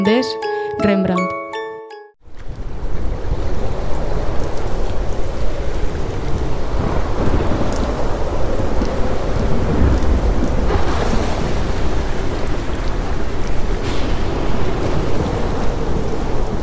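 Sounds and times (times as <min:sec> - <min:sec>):
speech: 0:00.0 - 0:01.4
rolls of thunder in a storm at sea: 0:02.3 - 0:16.6
steady rain in a storm at sea: 0:02.3 - 0:16.6
crashing surf in a storm at sea: 0:09.6 - 0:16.6.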